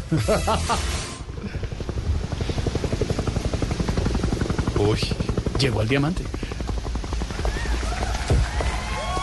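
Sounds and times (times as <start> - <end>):
helicopter rotor chopping: 0.0 - 9.2
speech: 0.1 - 1.0, 4.8 - 6.5.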